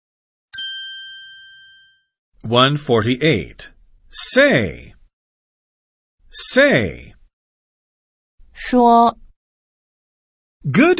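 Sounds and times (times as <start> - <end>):
single bright bell strike: 0.6 - 2.1
speech: 2.4 - 5.0, 6.3 - 7.2, 8.6 - 9.2, 10.6 - 10.9.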